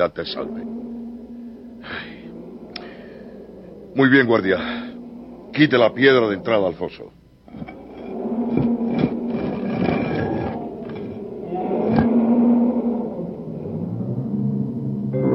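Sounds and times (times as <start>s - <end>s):
speech: 0.0s - 0.8s, 4.0s - 4.9s, 5.5s - 7.8s
lions roaring and snarling in a den: 0.0s - 15.3s.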